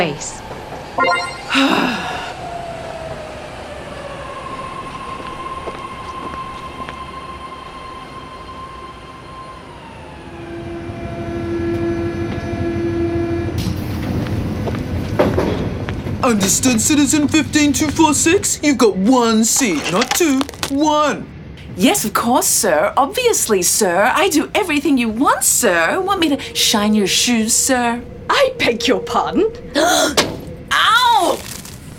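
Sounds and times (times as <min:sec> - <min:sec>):
speech: 0:00.0 - 0:02.2, 0:16.3 - 0:31.5
train arriving at station: 0:00.0 - 0:30.8.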